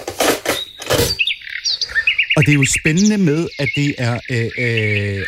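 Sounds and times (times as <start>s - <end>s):
birds chattering in a town centre played from a cassette tape: 0.4s - 5.2s
speech: 2.4s - 5.2s.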